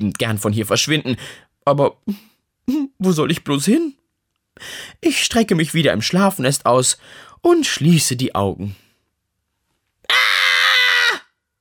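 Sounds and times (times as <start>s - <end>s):
speech: 0.0s - 4.0s, 4.6s - 8.8s
person screaming in horror: 10.1s - 11.4s.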